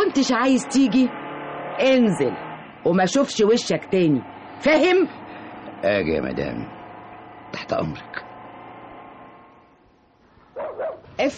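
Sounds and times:
speech: 0.2s - 1.2s, 1.8s - 5.2s, 5.8s - 6.8s, 7.5s - 8.3s, 11.2s - 11.3s
dogs barking: 10.5s - 11.1s.

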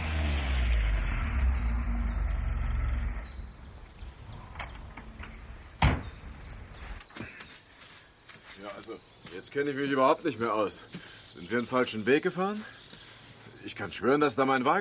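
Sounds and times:
low hum: 0.0s - 7.0s
tow truck engine rumbling: 0.0s - 7.0s
door slamming: 4.4s - 6.7s
speech: 8.7s - 12.8s, 13.7s - 14.7s.

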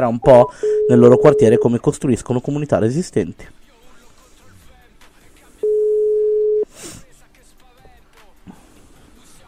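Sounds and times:
speech: 0.0s - 3.6s
telephone ringing tone while calling someone: 0.3s - 1.8s, 5.6s - 6.6s.

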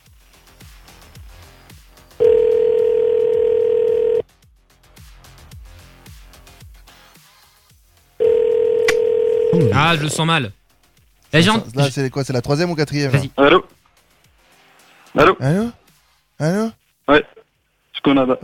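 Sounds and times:
telephone ringback tone while placing a call: 2.2s - 4.2s, 8.2s - 9.8s
speech: 9.9s - 10.6s, 11.3s - 13.8s, 15.2s - 15.8s, 16.4s - 17.4s, 18.0s - 18.4s.

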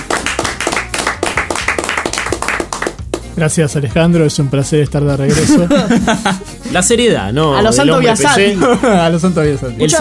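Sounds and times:
applause for a returning team member on a talk show: 0.0s - 3.4s
speech: 3.4s - 9.9s
laughter: 5.3s - 6.8s, 8.4s - 9.4s.

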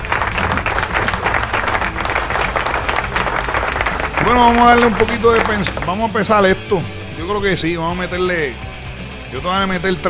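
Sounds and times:
applause: 0.0s - 6.3s
speech: 4.3s - 8.7s, 9.3s - 10.0s.

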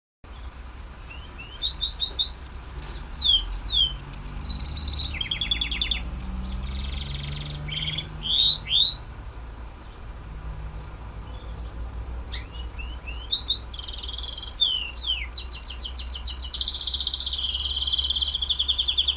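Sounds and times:
white-eye singing: 0.3s - 9.1s, 11.3s - 19.1s.

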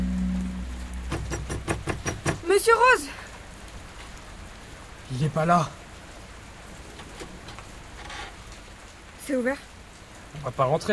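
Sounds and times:
rain falling: 0.0s - 10.9s
speech: 2.5s - 3.2s, 5.1s - 5.8s, 9.3s - 9.7s, 10.3s - 10.9s.

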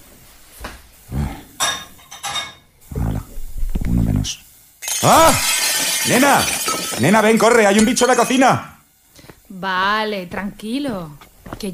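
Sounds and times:
low hiss: 0.0s - 11.7s
plates and cutlery clattering as dishes are washed by hand in a kitchen: 1.6s - 2.7s, 4.8s - 8.4s
speech: 5.0s - 8.7s, 9.5s - 11.7s.

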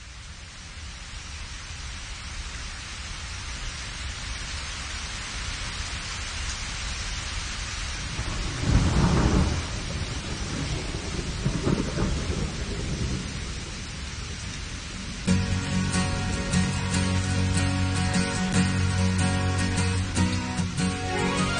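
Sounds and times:
hiss of falling rain: 0.0s - 21.5s
thunderstorm thunder rumbles: 8.1s - 17.6s.

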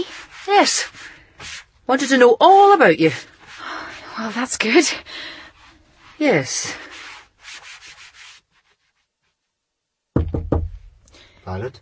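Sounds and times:
speech: 0.0s - 3.3s, 4.2s - 5.4s, 6.2s - 6.9s, 11.4s - 11.8s
scraping rubbing sound: 0.0s - 9.5s
firm knocks on a door: 10.1s - 11.0s.

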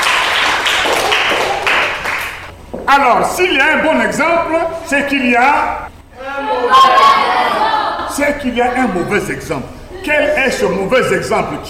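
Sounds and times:
church congregation applauding for the children: 0.0s - 2.5s
speech: 2.9s - 11.6s.

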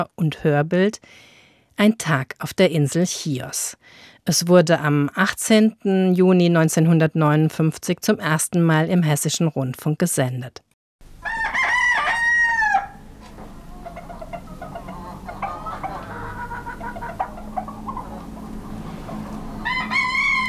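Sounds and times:
speech: 0.0s - 11.6s
roosters crowing at dawn on the Greek island of Chios: 11.1s - 20.4s
chickens clucking: 13.0s - 20.4s.

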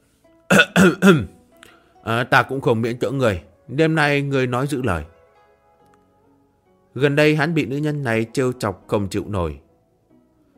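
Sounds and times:
man coughing roughly: 0.5s - 1.3s
speech: 0.8s - 1.4s, 2.0s - 5.1s, 6.9s - 9.6s.

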